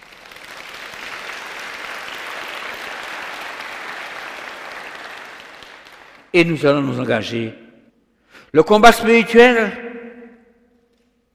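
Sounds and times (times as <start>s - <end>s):
crowd applauding: 0.0s - 6.3s
speech: 6.3s - 7.6s, 8.5s - 9.9s.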